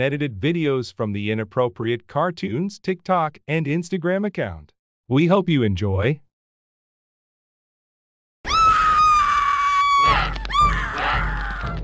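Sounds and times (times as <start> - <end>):
speech: 0.0 - 6.2
loud piercing high-pitched scream: 8.5 - 11.8.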